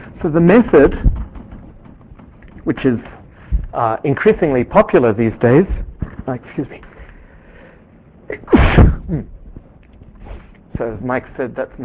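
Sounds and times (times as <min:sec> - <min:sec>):
speech: 0:00.2 - 0:01.2, 0:02.7 - 0:06.9, 0:08.3 - 0:09.3, 0:10.8 - 0:11.8
lecturer sneezing during a mathematics talk: 0:08.3 - 0:09.3.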